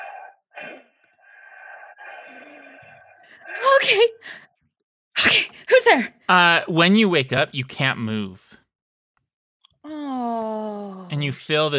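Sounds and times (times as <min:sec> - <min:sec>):
Foley artist's voice imitating eerie raspy breathing: 0:00.0 - 0:03.8
speech: 0:03.4 - 0:04.5, 0:05.2 - 0:08.5, 0:11.2 - 0:11.7.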